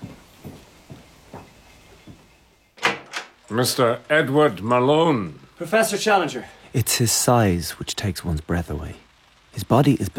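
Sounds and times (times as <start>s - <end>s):
soft footsteps in a corridor: 0.0s - 2.7s
door at the end of a corridor pulled open: 2.8s - 3.8s
speech: 3.5s - 9.0s, 9.6s - 10.1s.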